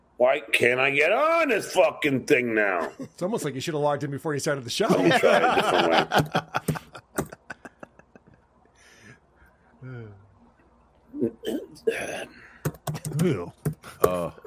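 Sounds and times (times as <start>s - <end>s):
speech: 0.2s - 7.0s, 13.1s - 14.4s
laughter: 2.7s - 3.5s, 4.8s - 8.4s
typing on a computer keyboard: 12.6s - 14.2s.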